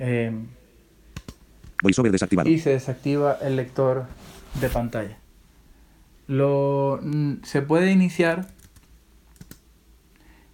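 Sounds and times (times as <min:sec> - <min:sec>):
speech: 0:00.0 - 0:00.6, 0:01.8 - 0:05.2, 0:06.3 - 0:08.6
quiet typing on a Bluetooth keyboard: 0:08.3 - 0:09.7.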